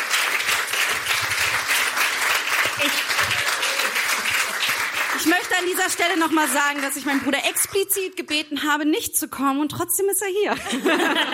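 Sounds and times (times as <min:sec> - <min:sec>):
audience applause: 0:00.0 - 0:08.1
speech: 0:02.8 - 0:03.4, 0:05.6 - 0:11.3
laughter: 0:02.8 - 0:04.6, 0:10.5 - 0:11.3.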